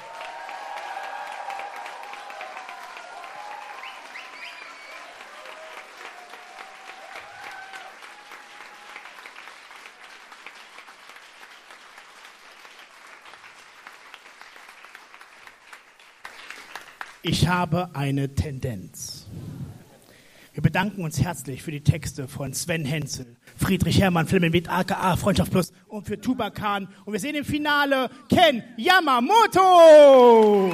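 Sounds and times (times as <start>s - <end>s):
cheering: 0.0s - 17.1s, 29.3s - 30.7s
poetry slam crowd applauding: 0.0s - 17.2s, 30.2s - 30.7s
whistles: 3.5s - 5.8s
speech: 17.2s - 19.4s, 20.7s - 30.7s.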